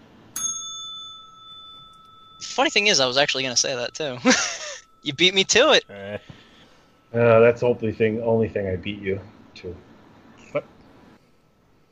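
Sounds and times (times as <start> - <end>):
faint hiss: 0.0 - 11.9
bright metallic bell strike: 0.3 - 9.6
speech: 2.4 - 6.3, 7.1 - 9.9, 10.5 - 10.7.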